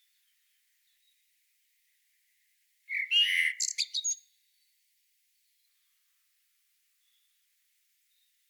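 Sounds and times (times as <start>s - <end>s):
common blackbird singing: 2.9s - 4.3s.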